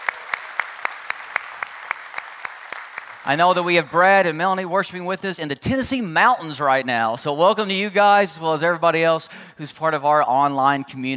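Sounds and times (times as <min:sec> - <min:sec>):
large audience applauding at a church worship service: 0:00.0 - 0:04.0
speech: 0:03.2 - 0:11.1.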